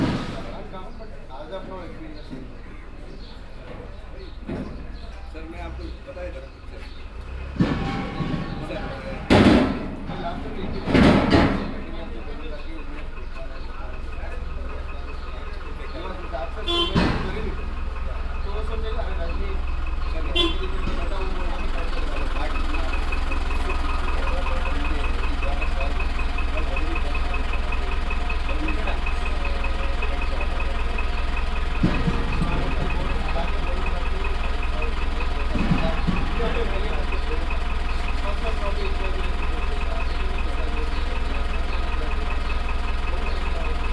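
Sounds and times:
truck idling during gas cylinder delivery: 0.0 - 43.9
voices: 0.0 - 43.9
gas cylinders clanking and knocking: 7.4 - 12.1, 16.7 - 40.2.

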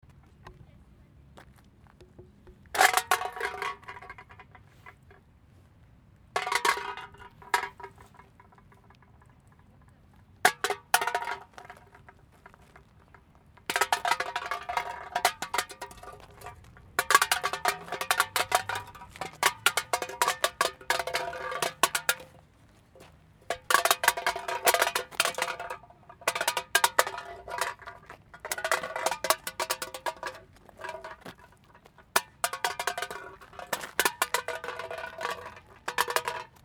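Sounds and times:
can rolling: 2.8 - 5.0, 6.4 - 8.8, 10.5 - 12.1, 13.7 - 22.4, 23.5 - 36.6.

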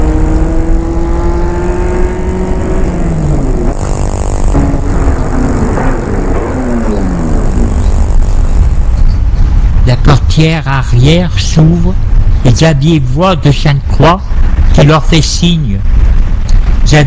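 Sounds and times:
car engine droning driving past: 0.0 - 8.5
steady road rumble: 0.0 - 17.0
speech: 10.4 - 15.9, 16.8 - 17.0.

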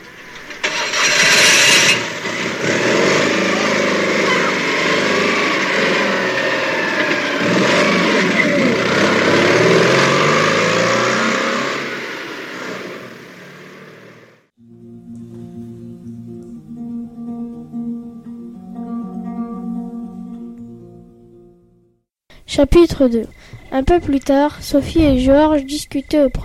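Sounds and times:
small car engine starting and revving as it drives away: 0.0 - 16.4
soft music: 14.6 - 22.0
speech: 22.6 - 26.4.

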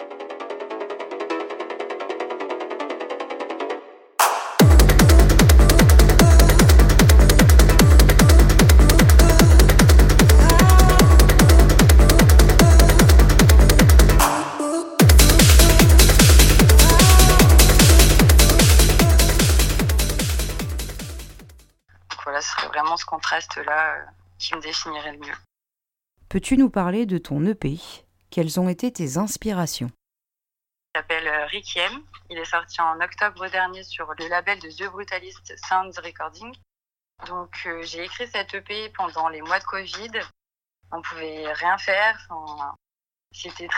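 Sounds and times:
hard techno track with heavy bass kicks: 4.6 - 21.5
speech: 24.0 - 25.5, 26.3 - 30.0, 30.9 - 43.7.

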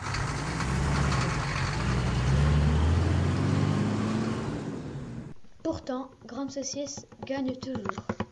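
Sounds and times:
broadband road noise: 0.0 - 5.4
bus engine rumbling: 0.0 - 5.4
speech: 5.7 - 8.2.

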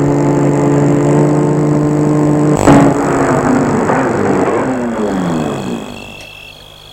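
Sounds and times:
car engine humming and winding down as the car stops: 0.0 - 6.9
car clunk: 3.3 - 6.9.

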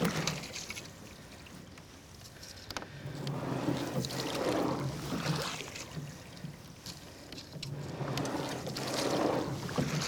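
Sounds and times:
rower rowing at cruising pace during training: 0.0 - 10.0.

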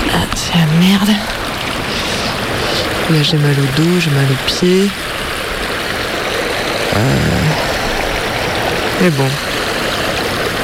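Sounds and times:
flowing stream: 0.0 - 10.6
speech: 3.1 - 5.2, 7.0 - 7.8, 9.0 - 9.5.

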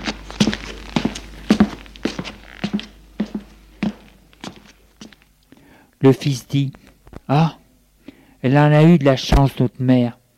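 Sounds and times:
footsteps climbing a wooden staircase: 0.0 - 5.3
speech: 6.0 - 7.6, 8.4 - 10.2.

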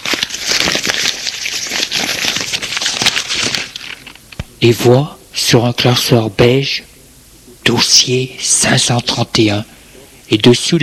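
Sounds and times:
paper wrapping ripped and crumpled off a string-tied package: 0.0 - 4.2
speech: 4.6 - 6.9, 7.7 - 10.8.

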